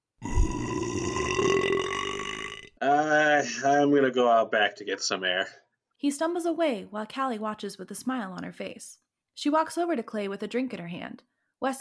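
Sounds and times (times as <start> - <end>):
long loud gravelly burp: 0.2 - 3.4
speech: 3.4 - 11.8.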